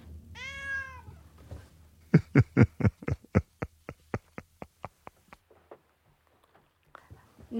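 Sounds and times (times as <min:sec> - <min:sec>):
cat meowing: 0:00.3 - 0:01.2
laughter: 0:02.1 - 0:05.4.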